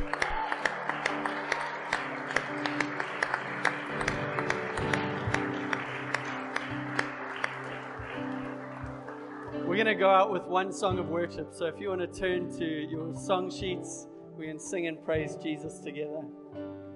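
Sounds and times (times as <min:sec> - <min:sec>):
audience applause: 0:00.0 - 0:10.5
speech: 0:09.9 - 0:16.4.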